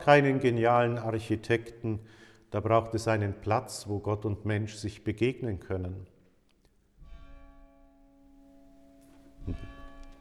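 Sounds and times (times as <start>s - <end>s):
speech: 0.0s - 6.1s, 9.5s - 9.7s
church bell tolling: 7.6s - 10.1s.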